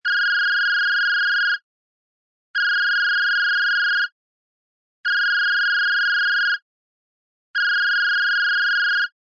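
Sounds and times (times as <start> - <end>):
phone ringing: 0.1 - 1.6, 2.6 - 4.1, 5.1 - 6.6, 7.6 - 9.2.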